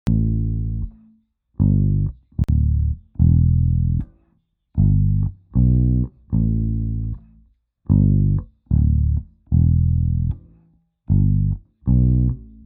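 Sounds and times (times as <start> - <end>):
bass sample: 0.0 - 1.0, 1.6 - 4.1, 4.8 - 7.2, 7.9 - 10.5, 11.1 - 12.6.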